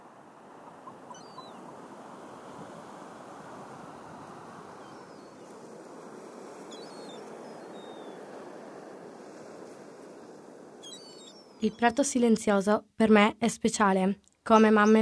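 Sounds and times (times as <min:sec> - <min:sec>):
sea waves washing against the shore: 0:00.0 - 0:11.6
light wind blowing: 0:00.0 - 0:12.0
speech: 0:11.6 - 0:14.9.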